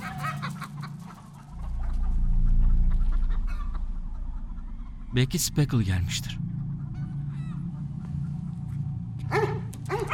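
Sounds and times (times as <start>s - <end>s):
steady low rumble of noise: 0.6s - 10.1s
speech: 5.1s - 6.5s
dog barking: 9.3s - 10.1s.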